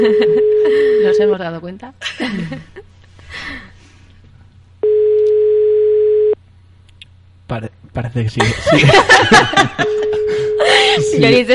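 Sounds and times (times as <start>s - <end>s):
speech: 0.0s - 0.5s, 1.1s - 3.6s, 7.5s - 11.5s
laughter: 0.0s - 1.0s, 2.0s - 2.9s, 8.4s - 11.2s
telephone ringback tone on an unanswered call: 0.0s - 1.3s, 4.8s - 6.4s, 9.8s - 11.2s.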